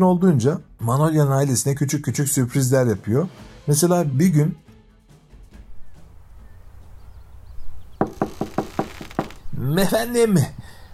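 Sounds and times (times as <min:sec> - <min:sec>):
speech: 0:00.0 - 0:04.6, 0:09.6 - 0:10.7
faint bird chirps: 0:05.8 - 0:09.5
rapid loud knocking on a door: 0:08.0 - 0:09.4.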